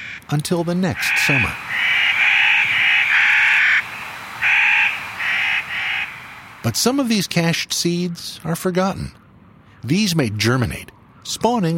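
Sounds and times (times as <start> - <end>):
Clark's nutcracker uttering nasal crow-like calls: 0.0 - 6.7
speech: 0.3 - 1.6, 6.6 - 9.2, 9.8 - 11.7.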